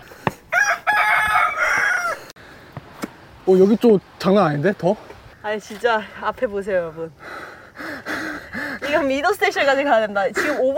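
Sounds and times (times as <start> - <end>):
faint outdoor hush: 0.0 - 10.7
wild rooster crowing: 0.5 - 2.3
speech: 3.5 - 7.3, 8.9 - 10.7.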